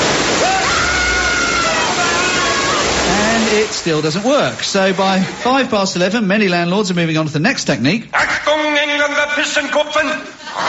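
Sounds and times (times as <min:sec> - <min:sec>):
sprinklers spraying water: 0:00.0 - 0:05.7
speech: 0:03.6 - 0:10.6.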